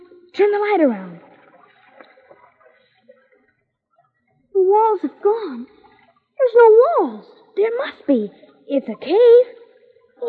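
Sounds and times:
speech: 0.4 - 1.2, 4.6 - 5.8, 6.4 - 9.6
small waves lapping against rock on a cave lake: 0.8 - 3.6.

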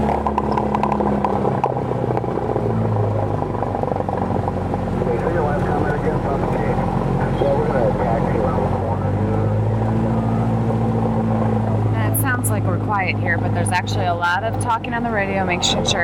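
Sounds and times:
seaplane propeller engines droning: 0.0 - 16.0
voices: 5.0 - 9.8, 12.0 - 16.0
speech: 13.1 - 16.0.

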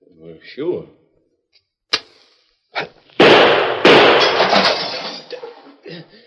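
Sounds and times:
gunshots shooting a cigar from a hand: 3.2 - 4.8
mirror breaking from a gunshot: 3.4 - 5.4.

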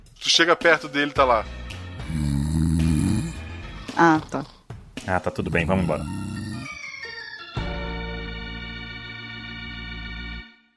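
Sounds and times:
speech: 0.2 - 1.6, 4.0 - 6.4
human voice imitating snoring: 2.0 - 4.6, 5.3 - 6.8.

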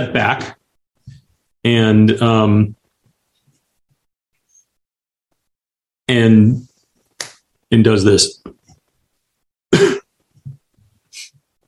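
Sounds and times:
speech: 0.0 - 0.6, 1.6 - 2.8, 6.1 - 6.7, 7.7 - 8.6
man coughing: 9.7 - 10.1.

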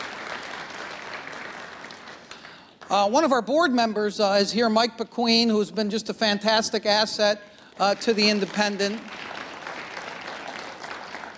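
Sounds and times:
crowd applauding steadily: 0.0 - 3.0, 7.7 - 11.3
speech: 2.9 - 9.2.

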